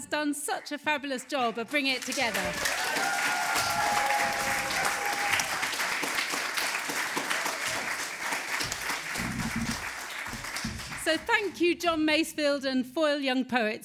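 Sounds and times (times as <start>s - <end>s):
speech: 0.0s - 3.2s, 11.1s - 13.8s
audience applause: 1.7s - 11.6s.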